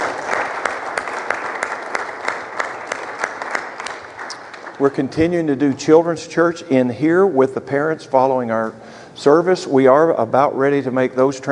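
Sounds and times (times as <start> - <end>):
audience applause: 0.0 - 5.0
speech: 4.8 - 11.4.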